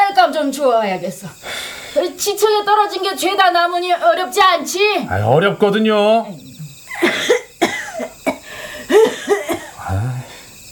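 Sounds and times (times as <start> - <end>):
speech: 0.4 - 7.4
harsh coughing from inside a room: 6.9 - 10.4.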